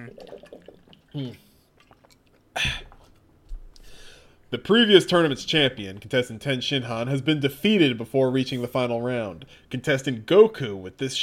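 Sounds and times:
person gulping water: 0.0s - 4.5s
faint noise: 0.0s - 11.2s
speech: 1.2s - 1.4s, 4.5s - 11.2s.

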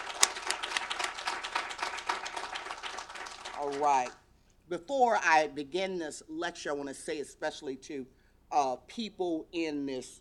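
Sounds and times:
crowd applauding at a women's gathering: 0.0s - 4.2s
speech: 3.6s - 10.1s.

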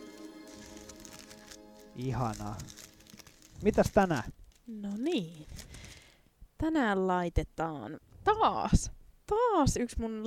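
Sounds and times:
large book pages rustling while being handled: 0.0s - 6.1s
speech: 2.0s - 2.8s, 3.6s - 5.7s, 6.6s - 10.2s.

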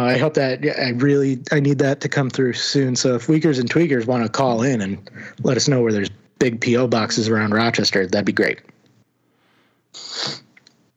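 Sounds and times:
speech: 0.0s - 8.7s, 10.0s - 10.4s
quiet breath: 5.1s - 5.4s, 9.2s - 10.2s
person sneezing: 10.0s - 10.6s.

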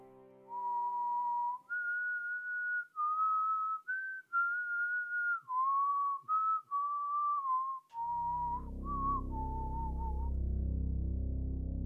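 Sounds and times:
woman whistling a strange repeated tune: 0.5s - 10.3s
low rumbling noise: 8.0s - 11.8s.

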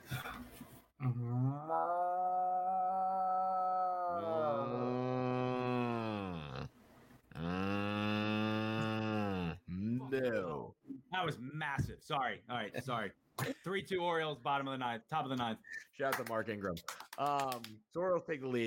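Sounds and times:
speech: 0.4s - 2.2s, 10.2s - 10.6s, 11.2s - 18.6s
person imitating cow moo: 1.0s - 6.7s, 7.3s - 10.0s.

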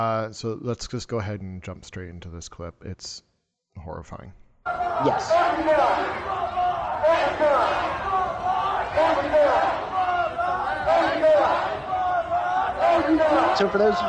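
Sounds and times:
speech: 0.0s - 8.2s, 9.0s - 9.9s, 12.9s - 14.0s
large crowd of protesters marching and chanting in a street: 4.7s - 14.0s.

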